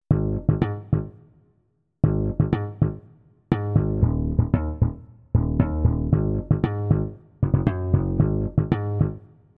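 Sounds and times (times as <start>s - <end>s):
emulator funk bass: 0.1s - 1.1s, 2.0s - 9.2s.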